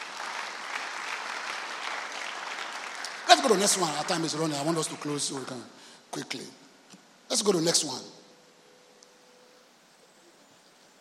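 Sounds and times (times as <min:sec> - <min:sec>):
congregation clapping hands at a church service: 0:00.0 - 0:05.8
speech: 0:03.4 - 0:06.6, 0:07.3 - 0:08.2.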